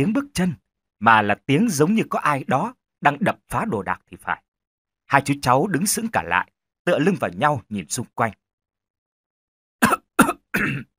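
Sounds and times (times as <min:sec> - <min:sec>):
speech: 0:00.0 - 0:04.4, 0:05.1 - 0:08.4, 0:10.6 - 0:10.9
person coughing violently: 0:09.8 - 0:10.9.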